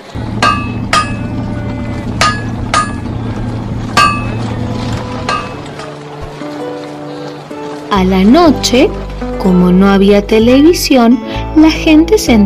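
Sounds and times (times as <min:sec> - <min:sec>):
steady low hum: 0:00.0 - 0:05.9
hammer blows on metal at a blacksmith's anvil forging horseshoes: 0:00.2 - 0:05.9
speech: 0:07.9 - 0:12.4.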